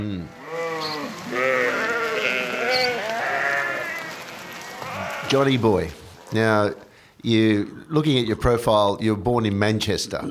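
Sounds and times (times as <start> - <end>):
speech: 0.0 - 1.5, 5.3 - 10.2
goat bleating: 0.2 - 6.5.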